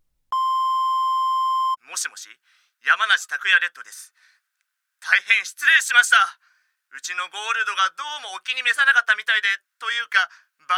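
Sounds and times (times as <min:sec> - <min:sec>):
answering machine electronic beep: 0:00.4 - 0:01.8
speech: 0:02.0 - 0:04.4, 0:05.0 - 0:10.7.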